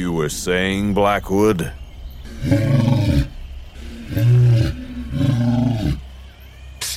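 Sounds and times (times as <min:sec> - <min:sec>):
speech: 0:00.0 - 0:01.8, 0:02.4 - 0:03.1
lion roaring a challenge to fight: 0:02.3 - 0:06.2.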